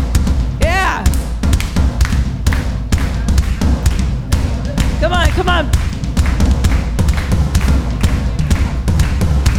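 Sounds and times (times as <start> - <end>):
driving drum beat: 0.0 - 9.5
person calling out over drum beat: 0.6 - 1.1
speech: 5.4 - 5.8.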